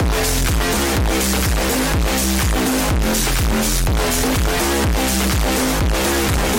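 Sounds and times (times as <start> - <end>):
bass boosted intro music: 0.0 - 6.5.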